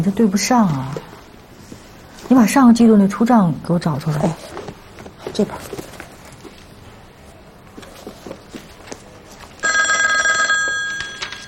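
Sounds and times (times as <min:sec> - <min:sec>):
speech: 0:00.0 - 0:01.1, 0:02.3 - 0:04.6, 0:05.4 - 0:05.8
telephone bell ringing: 0:09.6 - 0:11.4.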